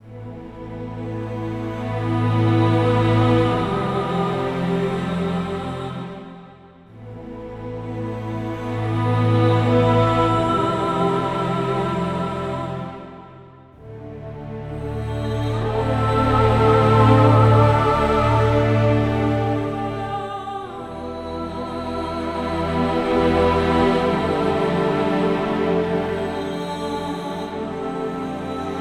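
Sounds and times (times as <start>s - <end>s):
orchestral ambient music: 0.0s - 28.8s.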